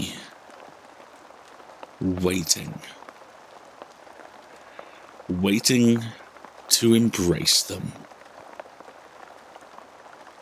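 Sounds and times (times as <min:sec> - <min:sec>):
steady soft rain falling: 0:00.0 - 0:10.4
speech: 0:02.0 - 0:03.0, 0:05.3 - 0:08.1.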